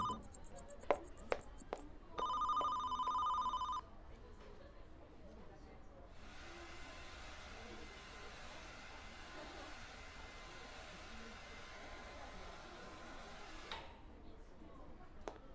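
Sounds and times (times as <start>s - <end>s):
telephone ringing with rapid electronic trilling: 0.0s - 3.8s.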